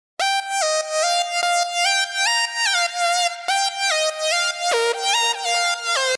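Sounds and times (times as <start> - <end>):
lead synth: 0.2 - 6.1.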